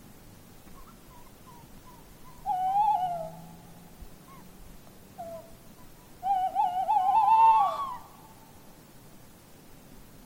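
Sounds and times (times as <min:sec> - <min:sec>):
tawny owl hooting: 0:00.8 - 0:04.5, 0:05.2 - 0:08.6.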